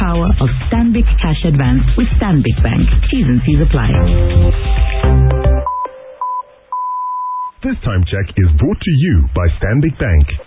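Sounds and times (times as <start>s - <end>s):
speech: 0.4s - 5.4s, 7.6s - 10.4s
musical tone: 3.9s - 7.4s
telephone keypad dialing beeps: 5.6s - 7.6s.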